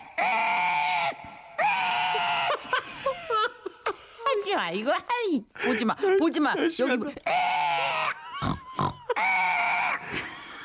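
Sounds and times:
piglet squealing and grunting inside an artillery shell canister: 0.2 - 2.5, 7.2 - 10.0
laughter: 2.1 - 4.2
speech: 4.5 - 7.4.

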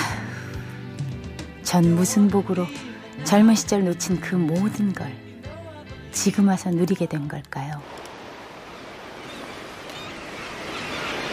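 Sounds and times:
speech: 1.7 - 5.2, 6.2 - 8.0
surf at the seashore: 7.8 - 11.3.

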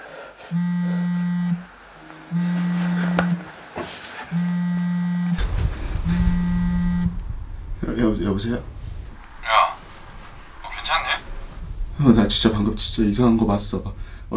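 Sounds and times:
speech: 0.5 - 0.8, 8.4 - 8.8, 12.0 - 14.3
phone buzzing against a hard tabletop: 0.5 - 1.7, 2.3 - 3.5, 4.4 - 5.4, 6.0 - 7.2
low rumbling rattle: 5.4 - 14.3.

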